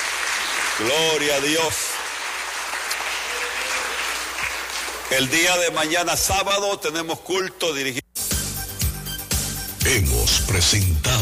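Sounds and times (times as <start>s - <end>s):
church congregation applauding during a worship service: 0.0s - 6.6s
speech: 0.8s - 1.9s, 5.1s - 8.0s, 9.9s - 11.2s.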